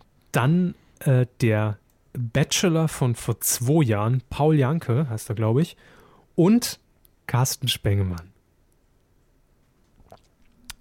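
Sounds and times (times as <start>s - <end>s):
speech: 0.4s - 8.3s
person swallowing a drink: 10.0s - 10.7s.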